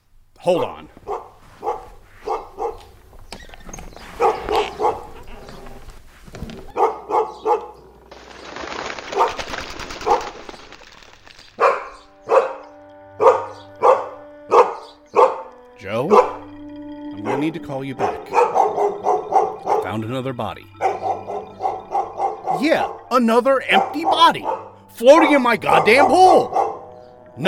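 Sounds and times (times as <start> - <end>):
speech: 0.4 - 1.0, 17.5 - 18.5, 19.9 - 20.8, 22.5 - 26.6
dog barking: 1.0 - 2.9, 4.1 - 5.2, 6.7 - 7.8, 11.6 - 16.5, 18.0 - 19.9, 20.7 - 22.6, 23.7 - 24.8, 25.7 - 27.1.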